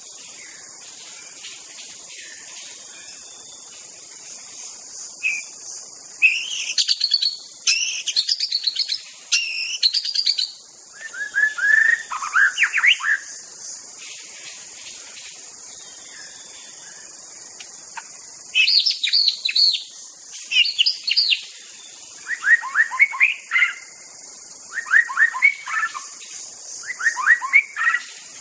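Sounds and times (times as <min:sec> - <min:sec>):
constant high insect drone in forest: 0:00.0 - 0:28.3
wild white-rumped shama singing in forest: 0:06.2 - 0:13.2, 0:22.2 - 0:23.8, 0:24.7 - 0:26.0, 0:26.8 - 0:28.1.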